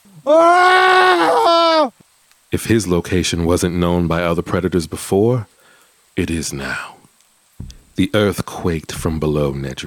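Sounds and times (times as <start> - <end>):
man shrieking in pain: 0.1 - 2.0
speech: 0.2 - 0.9, 2.5 - 5.6, 6.2 - 7.0, 8.0 - 9.8.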